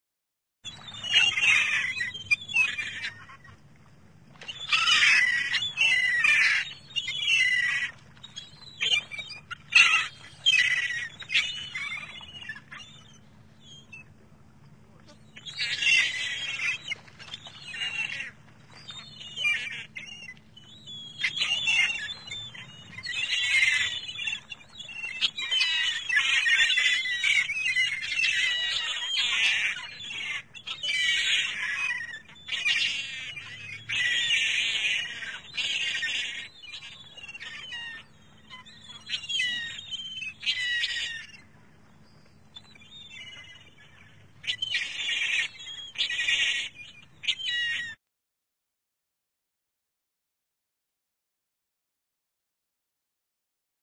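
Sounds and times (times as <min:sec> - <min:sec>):
flock of seagulls circling in the air: 0:00.7 - 0:03.6, 0:04.3 - 0:14.1, 0:15.0 - 0:48.0.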